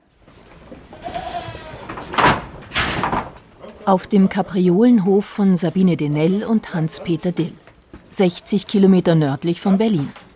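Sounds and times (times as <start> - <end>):
faint barnyard rustling: 0.0 - 10.3
dairy goats bleating while being fed oats: 0.9 - 2.0
speech: 3.9 - 10.2.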